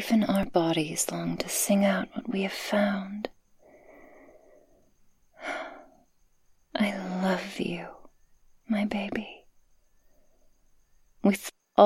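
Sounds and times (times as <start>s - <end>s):
speech: 0.0s - 3.4s, 6.8s - 8.0s, 8.7s - 9.4s, 11.2s - 11.8s
slow soft breathing: 3.5s - 6.1s.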